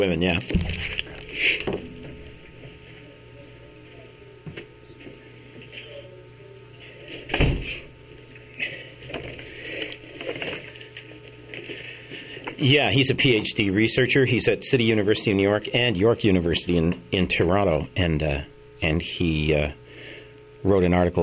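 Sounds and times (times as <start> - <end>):
speech: 0.0 - 1.8, 12.6 - 19.8, 20.6 - 21.2
room noise: 0.0 - 21.2
faint voices: 2.8 - 7.4
door pushed shut with a solid thud: 7.3 - 7.8.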